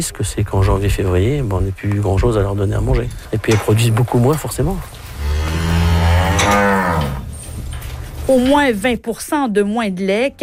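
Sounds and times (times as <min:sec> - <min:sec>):
speech: 0:00.0 - 0:05.6, 0:08.3 - 0:10.4
dairy cow mooing: 0:05.1 - 0:07.4.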